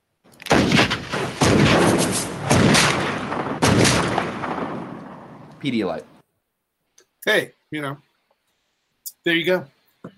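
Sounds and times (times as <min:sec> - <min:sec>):
gunshot sound effect: 0:00.5 - 0:05.6
speech: 0:05.6 - 0:06.1, 0:07.2 - 0:08.1, 0:09.2 - 0:10.1.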